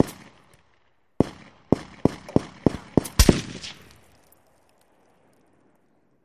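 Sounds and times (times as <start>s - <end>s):
artillery fire: 1.2s - 4.4s.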